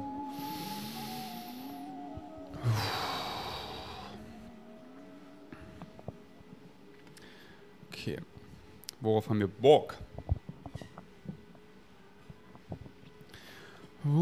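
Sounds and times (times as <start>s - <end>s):
deep breath in and out: 0.3s - 2.0s, 2.6s - 4.5s, 7.2s - 7.8s, 13.3s - 14.0s
speech: 8.0s - 8.3s, 9.0s - 10.3s.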